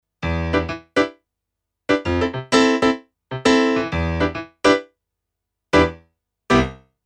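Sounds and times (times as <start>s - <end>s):
digital piano Pop Piano tone: 0.2s - 1.2s, 1.9s - 4.9s, 5.8s - 6.8s.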